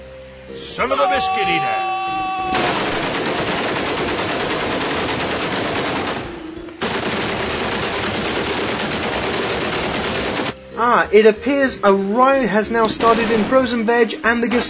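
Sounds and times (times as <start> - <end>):
speech: 0.5 - 2.6, 10.8 - 14.6
loud sustained machine gun fire in rapid bursts: 2.6 - 10.6, 12.9 - 13.7.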